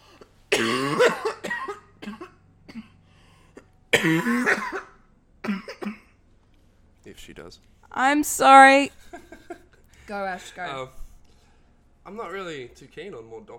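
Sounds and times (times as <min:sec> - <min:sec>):
person coughing in harsh hacking fits: 0:00.5 - 0:03.0, 0:03.6 - 0:06.1
speech: 0:04.0 - 0:04.8, 0:07.2 - 0:09.2, 0:10.1 - 0:11.0, 0:12.1 - 0:13.5.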